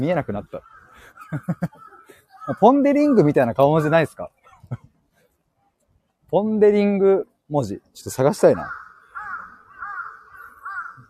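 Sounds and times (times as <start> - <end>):
speech: 0.0 - 1.9, 2.5 - 4.8, 6.3 - 8.8
crow cawing: 0.0 - 3.9, 8.5 - 11.0
laughter: 1.0 - 2.6.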